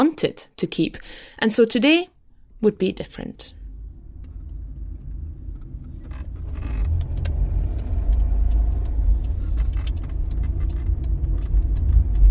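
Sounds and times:
speech: 0.0s - 3.6s
car engine and tyre rumble on a road leading to a small village: 3.6s - 12.2s
light ticks and clicks: 5.6s - 12.2s.

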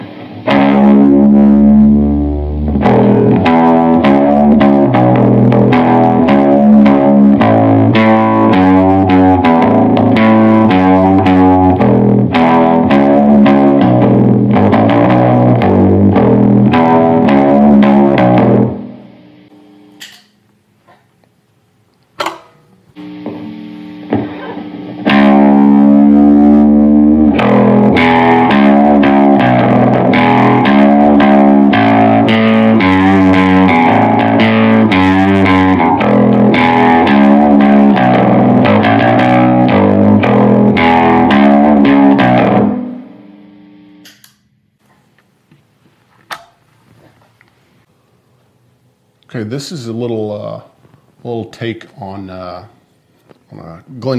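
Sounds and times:
distorted electric baritone guitar played with a thin heart-shaped pick: 0.0s - 20.0s, 22.9s - 44.8s
speech: 49.6s - 50.7s, 51.5s - 52.8s, 54.0s - 54.1s.

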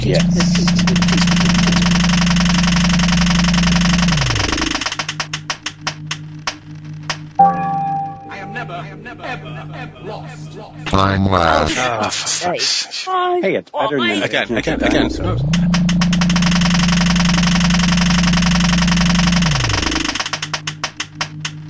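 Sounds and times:
speech: 0.0s - 1.9s, 8.8s - 15.8s
prize wheel spun for a game whirring: 0.0s - 6.1s, 14.8s - 21.6s
prize wheel clicking ticks as the wheel slows: 0.0s - 7.3s, 15.4s - 21.6s
brief tonal sting: 7.4s - 8.6s
laughter: 8.3s - 13.1s, 13.8s - 15.5s.

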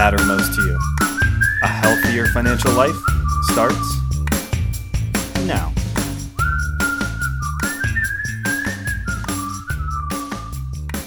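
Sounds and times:
speech: 0.0s - 1.0s, 1.6s - 4.0s, 5.5s - 5.8s
person whistling a melody: 0.0s - 4.8s, 6.3s - 11.0s
rhythmic music bed with bass and percussion: 0.0s - 11.0s.

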